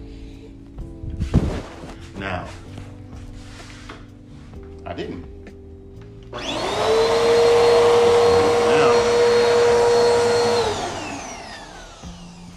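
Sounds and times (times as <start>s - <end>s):
speech: 2.2s - 2.6s, 4.9s - 5.3s
vacuum cleaner running: 6.3s - 12.5s.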